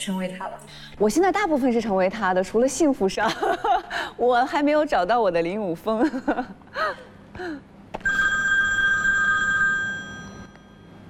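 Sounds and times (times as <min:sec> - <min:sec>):
speech: 0:00.0 - 0:07.7
telephone ringing with electronic tone: 0:08.0 - 0:11.0.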